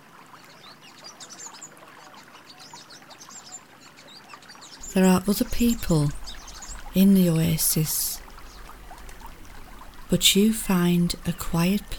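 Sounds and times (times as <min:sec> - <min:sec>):
steady soft rush of flowing water in a green oasis: 0:00.0 - 0:11.9
birds chirping and twittering in a green oasis: 0:02.4 - 0:11.9
speech: 0:05.0 - 0:06.2, 0:07.0 - 0:08.1, 0:10.1 - 0:11.9.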